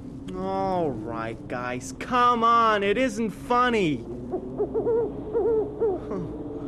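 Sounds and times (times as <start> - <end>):
speech: 0.3 - 4.9
owl hooting: 4.1 - 6.4.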